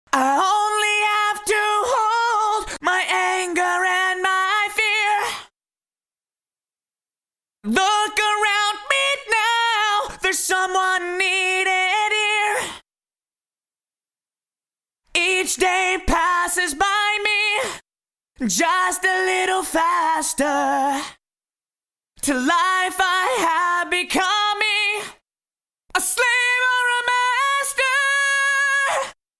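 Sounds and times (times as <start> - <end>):
dry vocals: 0.1 - 5.5, 7.6 - 12.8, 15.1 - 17.8, 18.4 - 21.2, 22.2 - 25.2, 25.9 - 29.2.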